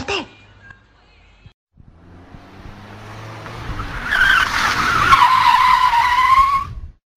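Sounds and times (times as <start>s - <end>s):
car engine rumbling: 1.7s - 6.7s
tires screeching as a car speeds off: 1.8s - 7.0s.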